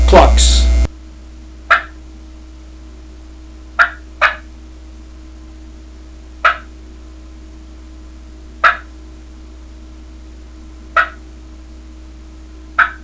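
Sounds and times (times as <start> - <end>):
turkey clucking: 1.7 - 2.0, 3.8 - 4.5, 6.4 - 6.7, 8.6 - 8.9, 11.0 - 11.2, 12.8 - 13.0.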